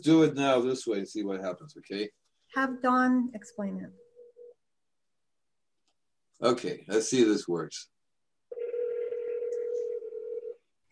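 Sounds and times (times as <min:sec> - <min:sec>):
speech: 0:00.0 - 0:04.1, 0:06.4 - 0:07.9
telephone ringback tone: 0:08.5 - 0:10.6.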